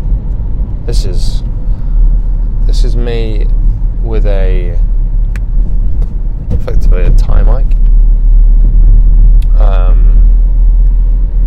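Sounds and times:
car engine and road noise on a frosty morning: 0.0s - 11.4s
speech: 0.9s - 1.5s, 2.8s - 4.9s, 6.6s - 7.9s.

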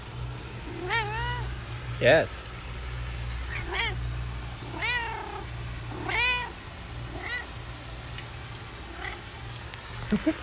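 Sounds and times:
low steady hum: 0.0s - 10.4s
domestic cat meowing: 0.6s - 1.5s, 3.4s - 4.0s, 4.6s - 7.5s, 8.9s - 9.3s
speech: 2.0s - 2.5s, 10.1s - 10.4s.

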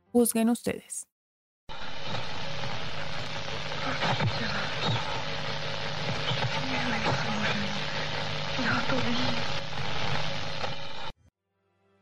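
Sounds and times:
speech: 0.1s - 1.1s
tape noise from a garden birdsong recording: 1.7s - 11.2s.

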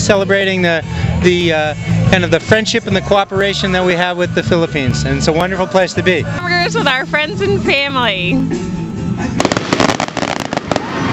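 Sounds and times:
speech: 0.1s - 9.4s
fireworks popping in rapid crackling bursts: 9.4s - 11.1s.

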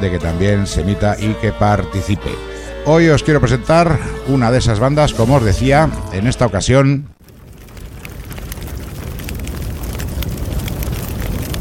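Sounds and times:
speech: 0.0s - 7.2s
fire crackling with pops and snaps: 7.1s - 11.5s.

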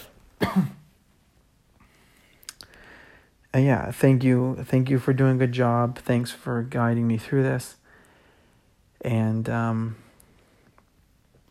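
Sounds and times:
raspy throat clearing: 0.4s - 0.9s
speech: 3.6s - 7.8s, 9.0s - 10.0s.

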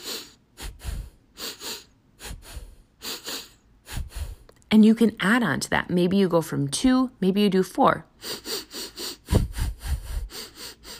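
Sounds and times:
pulse breathing through the nose with sniffing inhales and exhales: 0.0s - 4.6s, 8.2s - 10.9s
speech: 4.7s - 8.1s.

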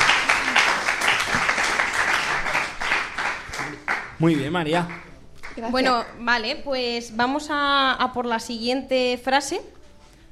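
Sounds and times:
group applauding: 0.0s - 6.2s
speech: 4.2s - 9.8s.

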